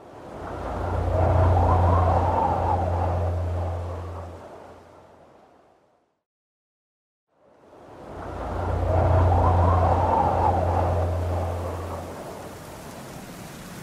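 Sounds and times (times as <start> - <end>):
heavy rain in severe cyclone: 0.0 - 4.8, 7.6 - 13.8
deep rumbling severe cyclone wind: 0.0 - 5.6, 7.7 - 13.2.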